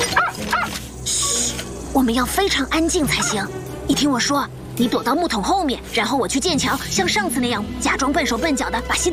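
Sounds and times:
robot dog barking: 0.1s - 0.8s, 3.0s - 3.5s
speech: 2.0s - 9.1s.

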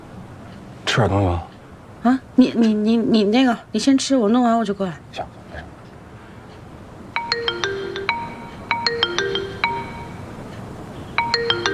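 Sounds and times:
low hum: 0.0s - 11.7s
speech: 1.0s - 5.4s
mobile phone ringtone chiming melody: 7.1s - 10.5s, 11.2s - 11.7s.

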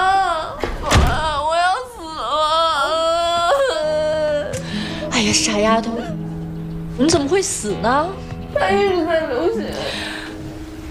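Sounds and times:
loud wailing crying voice with sliding tones: 0.0s - 6.3s
heavy household door being shut: 0.6s - 1.3s
speech: 5.3s - 6.2s, 7.0s - 10.1s.

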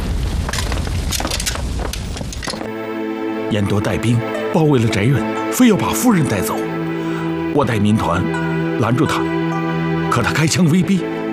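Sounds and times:
fire blazing inside a room: 0.0s - 2.7s
speech: 3.5s - 6.7s, 7.6s - 11.2s.

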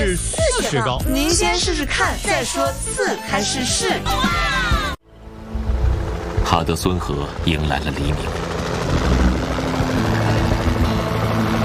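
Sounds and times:
speech: 0.1s - 4.8s, 6.5s - 9.3s
helicopter flying overhead with rotor thrum and engine whine: 4.4s - 11.6s.

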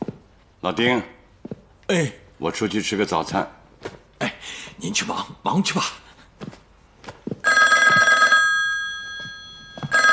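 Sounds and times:
soft footsteps: 0.0s - 0.6s, 1.3s - 1.8s, 6.3s - 8.2s, 9.0s - 10.1s
speech: 0.6s - 1.2s, 1.9s - 6.6s
telephone bell ringing: 7.4s - 10.1s.

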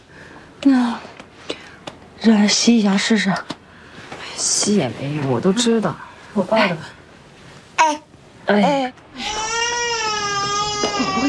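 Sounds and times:
speech: 0.6s - 1.1s, 2.2s - 3.6s, 4.4s - 7.0s, 7.8s - 8.8s
hungry baby crying: 9.2s - 11.2s.

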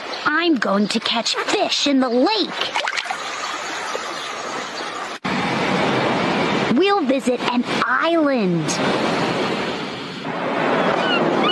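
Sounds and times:
speech: 0.2s - 3.0s, 6.8s - 9.3s
ocean surf washing in: 3.3s - 11.5s.

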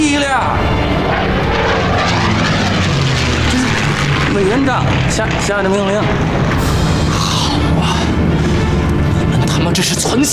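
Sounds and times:
propeller airplane engine from Chongqing powering up for takeoff: 0.0s - 10.3s
speech: 4.4s - 6.7s, 9.6s - 10.3s.

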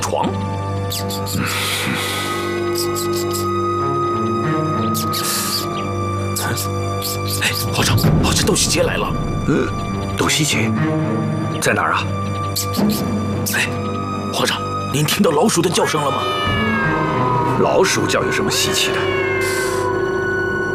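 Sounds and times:
music: 0.0s - 20.7s
speech: 0.1s - 3.5s, 6.6s - 19.7s
cat meowing: 15.8s - 20.0s.

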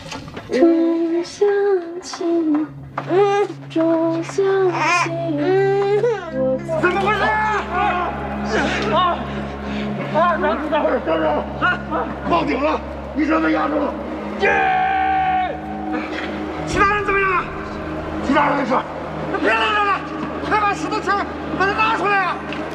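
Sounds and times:
adults talking: 0.5s - 22.7s
baby crying: 4.6s - 6.4s
steady low drone: 6.0s - 22.7s.

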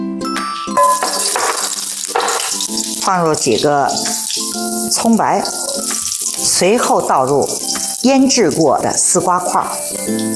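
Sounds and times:
ginger slices frying in hot cooking oil in a wok over low heat: 0.4s - 10.3s
speech: 3.1s - 4.1s, 4.9s - 5.9s, 6.6s - 10.3s.

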